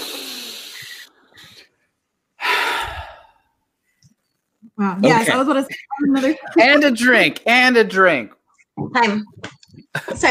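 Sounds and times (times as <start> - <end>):
people taking a deep breath together: 2.4 - 3.6
speech: 4.8 - 10.2
laughter: 5.2 - 7.2, 9.8 - 10.2.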